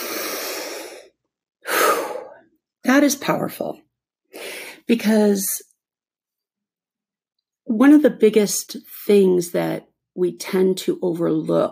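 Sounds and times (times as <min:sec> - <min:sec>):
deep breath taken in a guided calming moment: 0:00.0 - 0:02.4
speech: 0:02.9 - 0:03.9, 0:04.9 - 0:05.7, 0:07.7 - 0:11.7.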